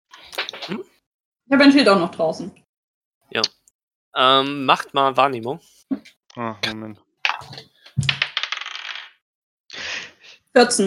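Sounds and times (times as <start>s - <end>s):
speech: 0.7s - 2.6s, 3.3s - 3.6s, 4.2s - 8.1s, 10.6s - 10.8s
dice clattering across a hard table: 7.9s - 9.2s.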